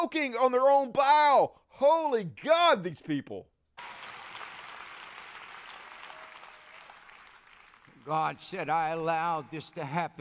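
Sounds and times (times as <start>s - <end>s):
speech: 0.0s - 4.0s, 8.0s - 10.1s
crowd clapping and cheering: 3.8s - 8.6s.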